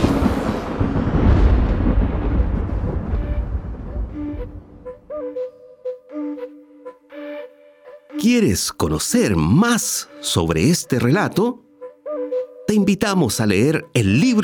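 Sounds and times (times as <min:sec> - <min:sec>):
thunder rumbling: 0:00.0 - 0:05.2
speech: 0:08.2 - 0:11.6, 0:12.7 - 0:14.4.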